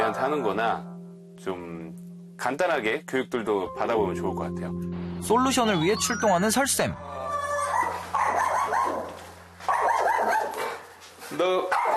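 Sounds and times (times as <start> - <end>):
speech: 0.1 - 7.4, 11.3 - 11.9
dog barking excitedly at a stranger: 7.7 - 10.9, 11.7 - 11.9.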